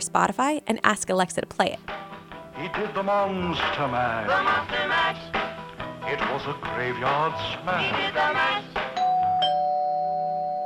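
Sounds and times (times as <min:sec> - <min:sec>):
speech: 0:00.1 - 0:05.4, 0:06.1 - 0:08.7
doorbell chime: 0:09.0 - 0:10.6.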